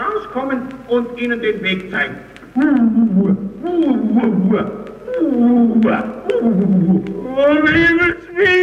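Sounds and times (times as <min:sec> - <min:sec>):
speech: 0:00.4 - 0:08.6
human voice imitating a lion roaring and growling: 0:02.6 - 0:08.2.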